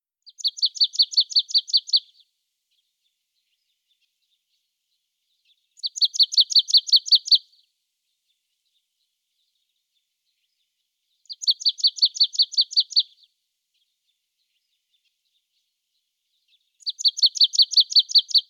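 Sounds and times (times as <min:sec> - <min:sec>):
marsh tit Parus palustris: 0:00.2 - 0:02.2, 0:05.4 - 0:07.4, 0:11.2 - 0:13.2, 0:16.4 - 0:18.4.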